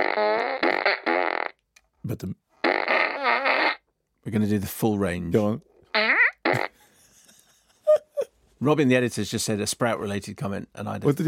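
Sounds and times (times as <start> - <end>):
fart noise: 0.0 - 1.6, 2.6 - 3.9, 5.9 - 6.8
speech: 2.1 - 2.4, 4.2 - 6.6, 8.6 - 11.2.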